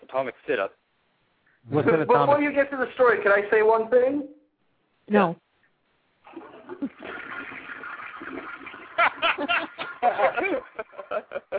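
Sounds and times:
speech: 0:00.1 - 0:00.8, 0:01.6 - 0:04.4, 0:05.1 - 0:05.4, 0:09.4 - 0:11.5
toilet flushing: 0:06.3 - 0:11.3
snickering laughter: 0:08.9 - 0:11.5.

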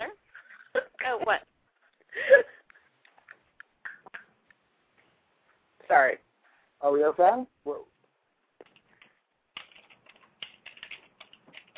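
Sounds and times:
speech: 0:01.2 - 0:01.5, 0:07.0 - 0:07.8
typing on a computer keyboard: 0:08.6 - 0:11.7.

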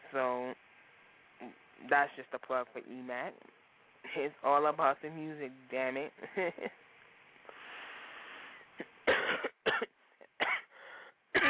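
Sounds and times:
speech: 0:00.1 - 0:00.7, 0:01.4 - 0:06.8
person coughing: 0:09.1 - 0:10.7.

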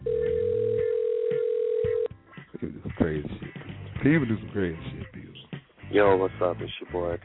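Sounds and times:
telephone ringback tone of an outgoing call: 0:00.0 - 0:02.1
speech: 0:02.6 - 0:05.1, 0:05.9 - 0:07.2.

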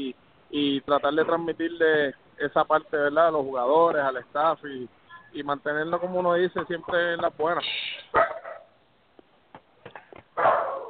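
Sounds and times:
speech: 0:00.0 - 0:08.0
female dog barking: 0:08.1 - 0:08.7, 0:10.4 - 0:10.8
faint short dog yips: 0:10.4 - 0:10.8.

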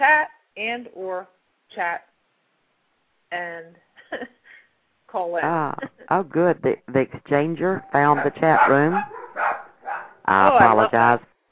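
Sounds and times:
speech: 0:00.6 - 0:02.1, 0:03.3 - 0:04.4, 0:05.1 - 0:09.2, 0:10.3 - 0:11.3
dog barking excitedly at home: 0:08.0 - 0:10.3.

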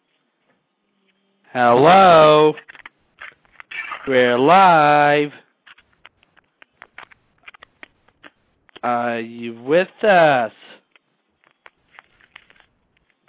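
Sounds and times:
speech: 0:01.5 - 0:02.7, 0:04.1 - 0:05.4, 0:08.8 - 0:10.6
phone rustling and clicking: 0:02.6 - 0:04.2, 0:05.6 - 0:08.8, 0:10.8 - 0:13.2.

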